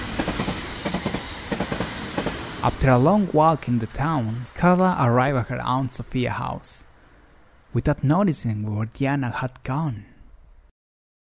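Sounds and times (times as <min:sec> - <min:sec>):
train wheels clickety-clack on rails: 0:00.0 - 0:05.9
train rolling along the rails rumbling: 0:00.0 - 0:07.6
speech: 0:02.6 - 0:06.9, 0:07.7 - 0:10.1.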